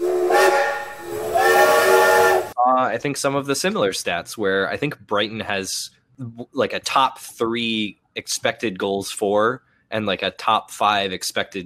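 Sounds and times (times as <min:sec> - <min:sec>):
steam train whistle: 0:00.0 - 0:02.6
speech: 0:02.9 - 0:11.6.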